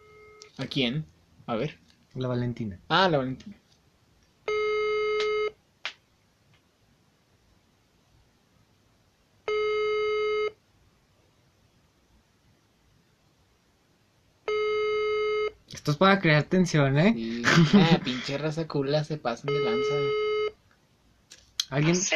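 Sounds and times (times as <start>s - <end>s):
quiet phone line noise: 0.0s - 22.1s
speech: 0.6s - 3.6s, 15.9s - 20.3s, 21.7s - 22.1s
ringback tone of an outgoing phone call: 4.5s - 5.5s, 9.5s - 10.6s, 14.5s - 15.5s, 19.5s - 20.5s.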